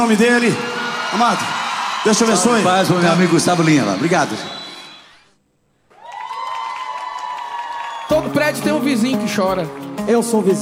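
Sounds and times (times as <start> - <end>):
speech: 0.0 - 4.6, 8.2 - 10.5
audience round of applause: 0.0 - 5.2, 5.9 - 8.8
audience cheering: 0.0 - 5.3, 5.9 - 8.9
audience whistles: 3.6 - 5.4.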